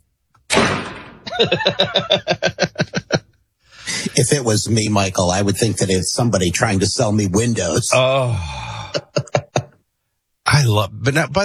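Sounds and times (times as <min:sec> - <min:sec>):
loud bang: 0:00.5 - 0:02.0
laughter: 0:01.2 - 0:04.4, 0:08.7 - 0:09.8
speech: 0:01.4 - 0:03.0, 0:04.1 - 0:08.8, 0:10.7 - 0:11.4.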